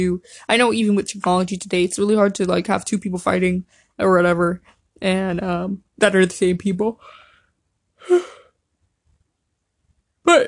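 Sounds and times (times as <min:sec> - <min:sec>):
speech: 0:00.0 - 0:07.2, 0:08.0 - 0:08.4, 0:10.2 - 0:10.4
person yawning: 0:08.0 - 0:08.5.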